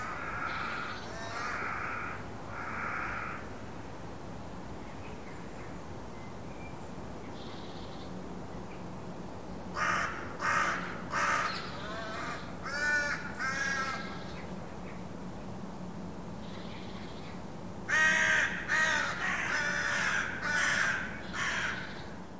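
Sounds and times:
bird cawing calls: 0.0 - 3.6, 9.7 - 15.0, 16.4 - 22.2.

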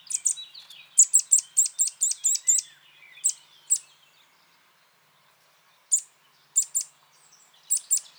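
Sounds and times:
Eurasian nuthatch calls: 0.1 - 3.9, 5.9 - 6.9, 7.7 - 8.1.

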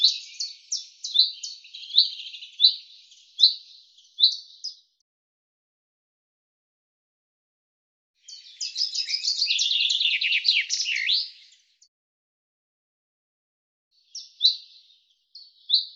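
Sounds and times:
common chaffinch song: 0.0 - 5.0, 8.2 - 11.9, 14.0 - 15.9.

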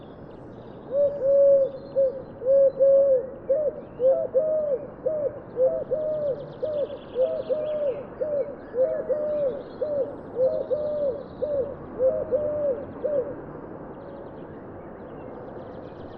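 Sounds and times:
bird giving soft low cooing calls: 0.9 - 13.4.

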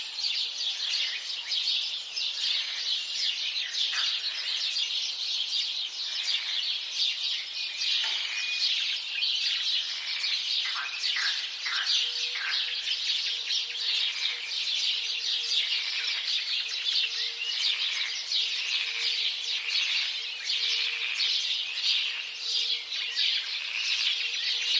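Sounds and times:
house sparrow flock chirping: 0.0 - 24.7.

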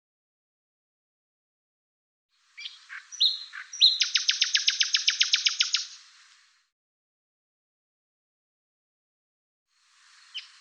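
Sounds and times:
bird chirps and high thin whistles: 2.6 - 6.0.

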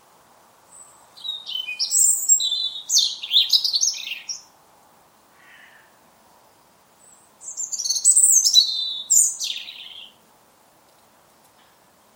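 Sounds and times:
European robin singing warbled phrases with trills: 0.7 - 4.6, 6.5 - 10.2.

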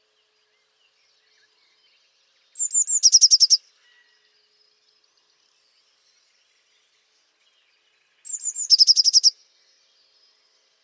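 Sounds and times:
Eurasian blue tit calls with buzzy trill: 2.6 - 3.6, 8.3 - 9.3.

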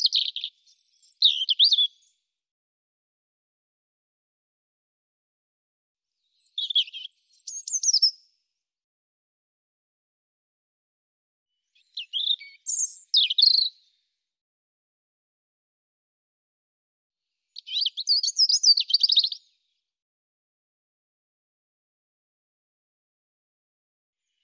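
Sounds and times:
European robin singing thin whistles and twitters: 0.0 - 2.2, 6.2 - 8.3, 11.7 - 14.0, 17.5 - 19.6.

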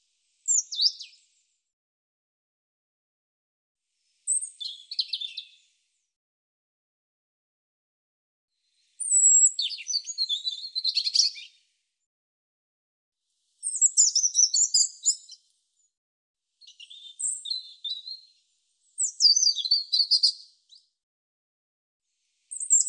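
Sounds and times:
European robin singing: 0.5 - 1.2, 4.3 - 5.6, 9.0 - 11.5, 13.6 - 15.4, 16.6 - 18.3, 19.0 - 20.8, 22.5 - 22.8.

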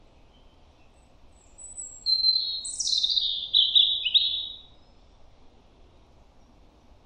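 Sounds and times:
European robin singing: 0.3 - 4.7.

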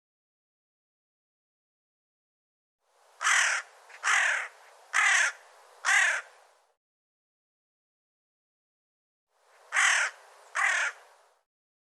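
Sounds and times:
bird calling in rough cawing notes: 3.2 - 6.4, 9.6 - 11.2.

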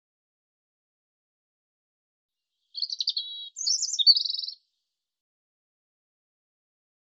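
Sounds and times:
European robin song: 2.6 - 4.8.

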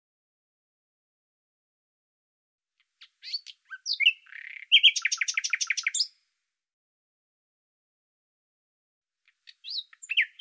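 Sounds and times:
bird song: 2.8 - 6.3, 9.2 - 10.3.

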